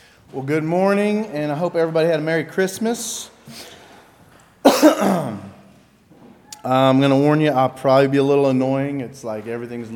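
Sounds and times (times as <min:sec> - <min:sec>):
speech: 0:00.3 - 0:03.8, 0:04.8 - 0:05.4, 0:06.6 - 0:09.9
person coughing harshly: 0:04.7 - 0:05.6
rough gravelly throat clearing: 0:04.7 - 0:05.7.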